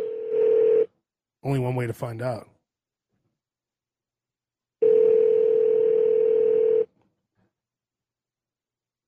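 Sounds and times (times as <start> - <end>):
telephone ringback tone: 0.0 - 0.9, 4.8 - 6.9
speech: 1.4 - 2.5.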